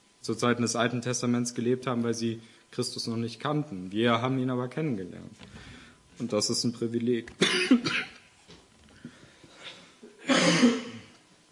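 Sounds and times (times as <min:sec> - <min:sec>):
speech: 0:00.2 - 0:08.1
quiet breathing: 0:02.4 - 0:02.8, 0:05.4 - 0:06.2, 0:08.9 - 0:10.0
person coughing: 0:07.4 - 0:08.2, 0:09.6 - 0:11.2.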